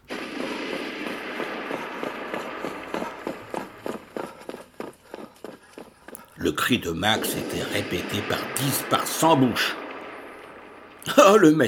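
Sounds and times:
rapid running footsteps: 0.7s - 8.6s
speech: 6.4s - 9.8s, 11.1s - 11.6s.

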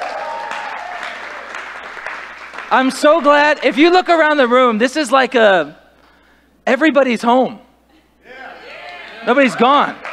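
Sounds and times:
room full of people applauding: 0.0s - 3.7s
speech: 2.7s - 5.8s, 6.7s - 7.6s, 9.2s - 10.1s.

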